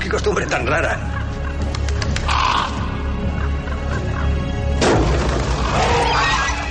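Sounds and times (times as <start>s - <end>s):
speech: 0.1s - 1.2s
crows cawing: 1.0s - 4.7s, 5.4s - 6.6s
crashing thud: 4.8s - 5.6s.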